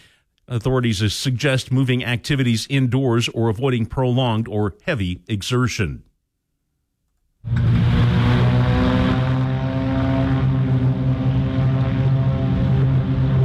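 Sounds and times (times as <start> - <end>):
speech: 0.5 - 6.1
Beechcraft Bonanza propeller airplanes taking off at a regional airport: 7.5 - 13.4.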